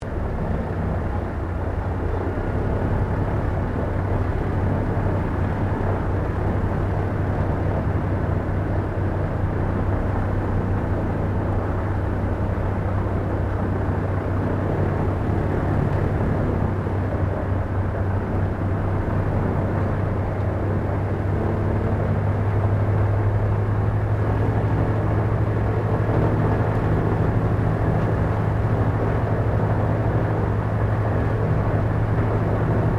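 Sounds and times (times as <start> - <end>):
PBY Catalina flying boat interior preflight ambience: 0.0 - 32.9.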